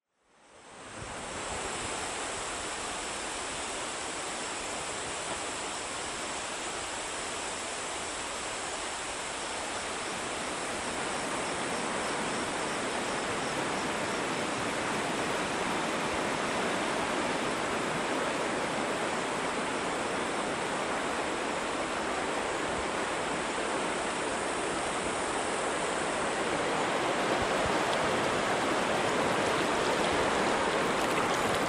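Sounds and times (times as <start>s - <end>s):
soundscape of the Rio Grande: 0.2s - 31.6s.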